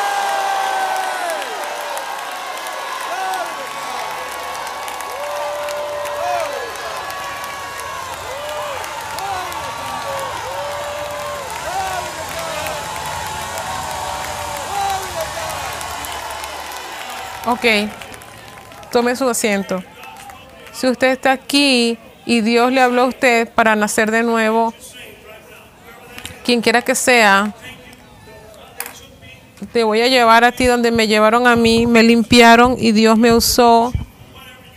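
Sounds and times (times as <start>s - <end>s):
scattered clapping: 0.0s - 21.0s
large crowd shouting to God and cheering: 0.0s - 21.2s
speech: 17.5s - 18.0s, 18.9s - 19.9s, 20.8s - 24.9s, 26.4s - 27.6s, 29.7s - 34.1s.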